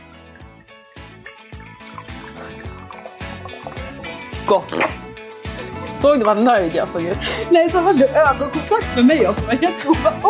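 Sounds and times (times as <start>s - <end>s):
drink pouring into a glass: 0.7s - 4.5s
speech: 4.5s - 5.0s, 6.0s - 10.2s.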